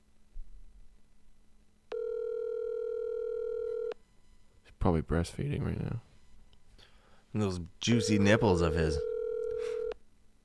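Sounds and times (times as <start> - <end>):
hum: 0.0 - 10.4
electronic phone tone of an outgoing call ringing: 1.9 - 4.0, 7.8 - 10.0
speech: 4.8 - 6.1, 7.3 - 9.1.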